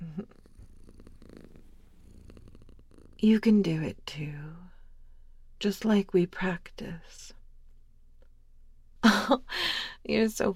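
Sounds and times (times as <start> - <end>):
person imitating a cat purring: 0.0 - 3.3
speech: 3.2 - 4.6, 5.6 - 7.4, 9.3 - 10.5.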